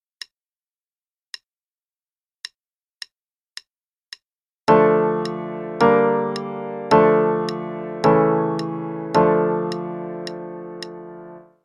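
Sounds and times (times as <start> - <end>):
D minor chord progression: 4.7 - 11.5.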